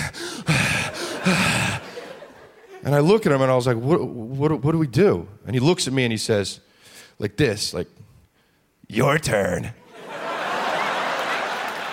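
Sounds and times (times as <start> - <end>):
voice imitating heavy excited breathing: 0.0 - 2.0
laughter: 0.4 - 3.1, 9.8 - 11.9
speech: 1.2 - 1.6, 2.8 - 8.0, 8.9 - 9.8.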